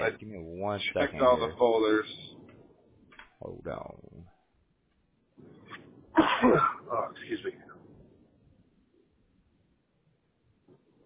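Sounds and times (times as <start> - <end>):
speech: 0.0 - 2.2, 3.4 - 4.3, 6.2 - 7.6
sneeze: 6.2 - 7.0.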